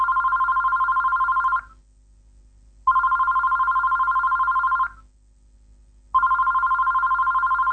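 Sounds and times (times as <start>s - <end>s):
telephone ringing with a bright trilling tone: 0.0s - 1.7s, 2.9s - 5.0s, 6.2s - 7.7s.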